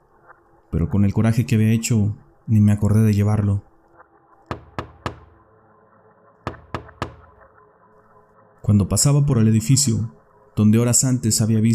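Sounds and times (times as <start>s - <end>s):
speech: 0.7s - 3.7s, 8.7s - 11.7s
light tapping on window glass: 4.5s - 5.4s, 6.5s - 7.5s.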